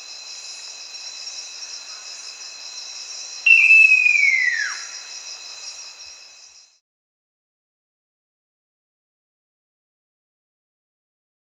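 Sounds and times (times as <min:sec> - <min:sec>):
constant shrill insect chorus: 0:00.0 - 0:06.8
great eared nightjar long descending whistled call: 0:03.4 - 0:05.8.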